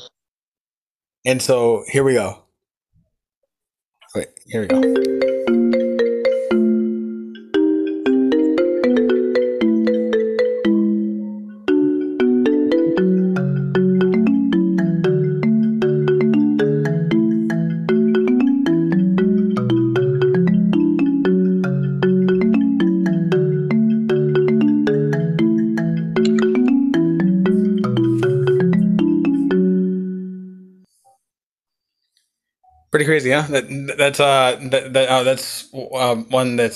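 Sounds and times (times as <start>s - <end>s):
speech: 1.2s - 2.4s, 4.1s - 5.3s, 33.0s - 36.7s
popular song remade as a marimba-like phone ringtone: 4.7s - 30.7s.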